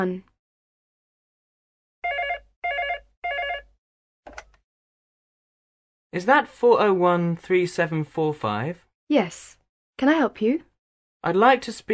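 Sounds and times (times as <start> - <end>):
speech: 0.0 - 0.3, 6.1 - 11.9
telephone ringing with a bright trilling bell: 2.0 - 3.8.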